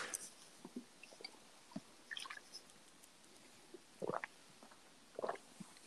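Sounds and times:
faint mouth clicks: 4.0s - 5.5s
loud wet gulps of a drink: 4.0s - 5.5s.

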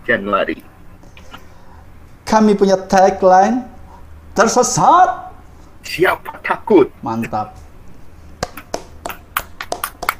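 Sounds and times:
speech: 0.1s - 0.7s, 2.3s - 3.7s, 4.4s - 5.2s, 5.8s - 7.6s
hand clapping: 8.4s - 10.1s.

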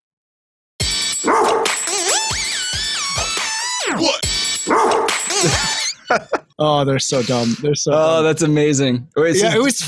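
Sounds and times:
steady thumping beat: 0.8s - 5.8s
sampled dog bark played at shifting pitches like a melody: 1.2s - 3.6s, 4.6s - 5.6s
laughter: 5.3s - 6.5s
speech: 6.1s - 9.8s.

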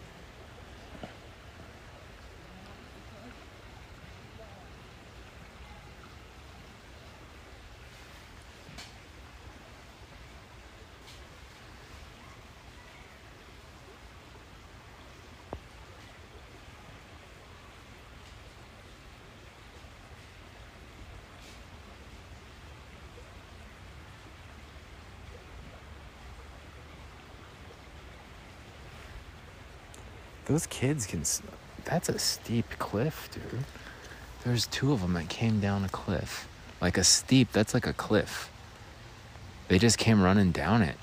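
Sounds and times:
flowing creek water rushing: 0.0s - 41.0s
faint ticks and bumps: 0.8s - 1.3s
speech: 30.5s - 38.5s, 39.7s - 41.0s.

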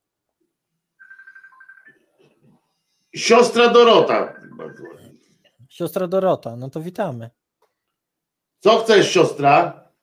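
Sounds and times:
telephone ringing with a pulsing electronic tone: 1.0s - 2.2s, 3.2s - 5.2s
speech: 3.1s - 5.0s, 5.8s - 7.4s, 8.6s - 9.8s.

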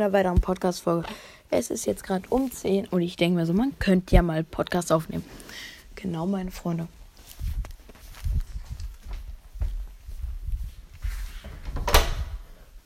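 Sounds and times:
speech: 0.0s - 7.0s
soft footsteps across a room indoors: 1.8s - 4.4s, 6.4s - 11.8s
door being pushed shut: 11.4s - 12.5s.

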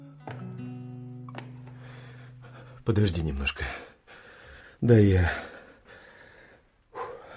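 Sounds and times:
person panting heavily after climbing a stairway: 1.7s - 2.8s, 3.7s - 7.3s
speech: 2.9s - 3.9s, 4.8s - 5.5s.

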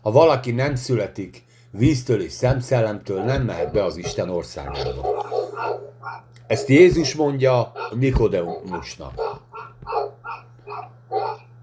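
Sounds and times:
speech: 0.0s - 9.4s
steady low hum: 0.0s - 11.6s
dog barking: 3.1s - 11.6s.

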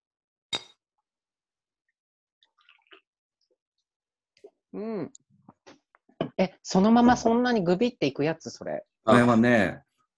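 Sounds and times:
drinks clinking together in a toast: 0.6s - 0.8s
speech: 4.7s - 5.2s, 6.4s - 9.9s.

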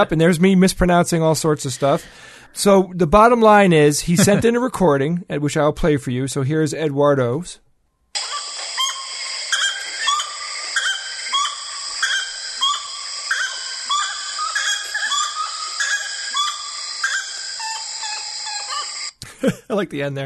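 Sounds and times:
speech: 0.0s - 7.6s, 19.8s - 20.2s
dense insect-filled hum: 8.2s - 19.1s
gray-necked wood rail cackling calls: 8.2s - 19.1s.

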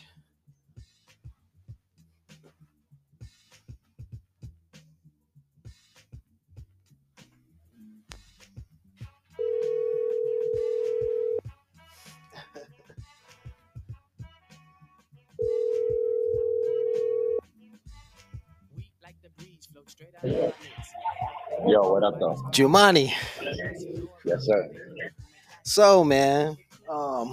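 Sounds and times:
outgoing phone call ringing tone: 9.4s - 11.4s, 15.4s - 17.4s
music turned down low: 9.4s - 13.8s, 15.2s - 27.3s
speech: 21.7s - 23.3s, 24.2s - 24.8s, 25.7s - 26.6s.

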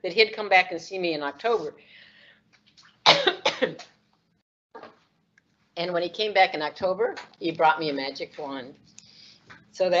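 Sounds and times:
speech: 0.0s - 2.1s, 3.1s - 3.9s, 5.8s - 9.0s, 9.7s - 9.9s
harsh coughing: 3.0s - 3.8s.

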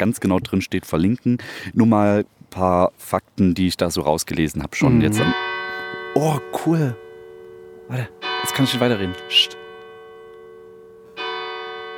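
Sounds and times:
speech: 0.0s - 5.6s, 6.2s - 7.0s, 7.9s - 9.6s
church tower bell tolling: 5.0s - 11.9s.

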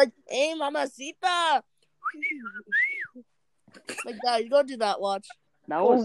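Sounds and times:
speech: 0.0s - 6.0s
person whistling a two-part catcall: 2.0s - 3.2s.

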